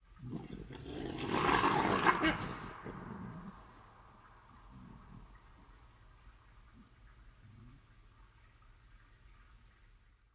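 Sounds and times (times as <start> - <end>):
forest animals at night: 0.0 - 10.2
wolves fighting in an autumn forest at night: 0.2 - 5.8.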